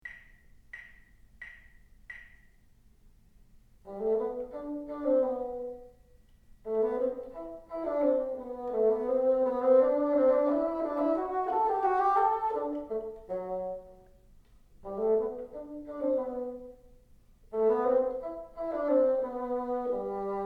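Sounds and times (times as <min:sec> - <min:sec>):
bassoon: 0:03.9 - 0:06.0, 0:06.7 - 0:14.2, 0:14.8 - 0:16.9, 0:17.5 - 0:20.4.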